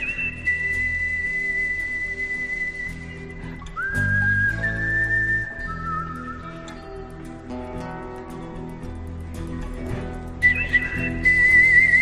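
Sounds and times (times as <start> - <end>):
person whistling a Western film theme: 0.0 - 7.1, 10.4 - 12.0
low instrumental backing: 0.0 - 12.0
steady ticking rhythm: 5.7 - 12.0.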